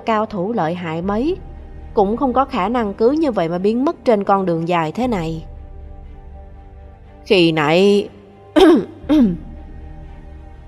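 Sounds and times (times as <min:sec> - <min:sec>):
speech: 0:00.0 - 0:05.5, 0:07.2 - 0:09.5
voice performer coughing to clear his throat: 0:08.6 - 0:09.6.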